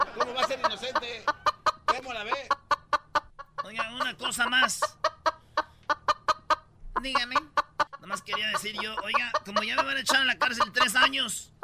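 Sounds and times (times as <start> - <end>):
laughter: 0.0 - 2.8, 8.0 - 11.2
hen clucking: 0.0 - 11.6
speech: 0.4 - 2.6, 3.8 - 5.0, 7.0 - 7.4, 8.2 - 11.6.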